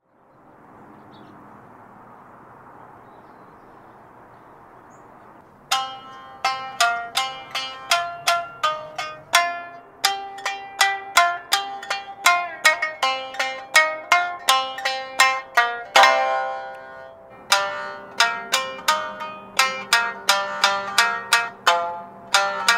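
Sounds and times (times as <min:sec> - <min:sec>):
Japanese shamisen: 0:05.4 - 0:22.7.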